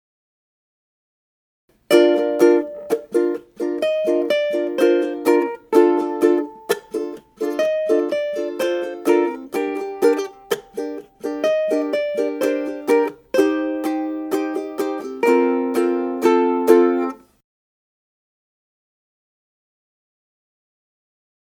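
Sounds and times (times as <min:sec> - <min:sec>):
ukulele chorus riff: 0:01.7 - 0:17.3.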